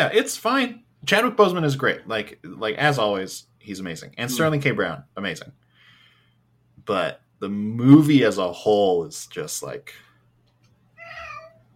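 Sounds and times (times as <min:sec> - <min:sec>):
speech: 0:00.0 - 0:05.6, 0:06.8 - 0:10.0
house cat meowing: 0:11.0 - 0:11.7.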